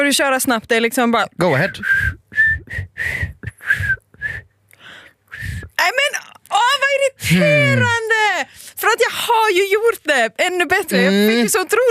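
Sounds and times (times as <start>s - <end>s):
speech: 0.0s - 2.1s, 6.9s - 11.8s
person whistling: 1.8s - 4.5s.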